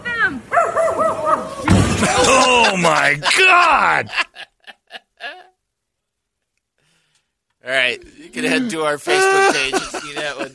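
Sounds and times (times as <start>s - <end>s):
speech: 0.3s - 0.5s, 1.2s - 4.4s, 7.6s - 10.5s
dog giving high yelping barks: 0.5s - 1.6s
sudden thump or bump: 1.6s - 2.2s
laughter: 1.9s - 5.5s, 8.4s - 10.5s.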